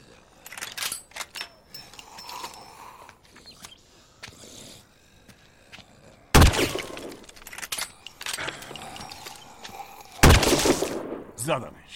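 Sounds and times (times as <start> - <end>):
gunshots: 6.3 - 7.2, 10.2 - 11.4
speech: 11.5 - 11.9.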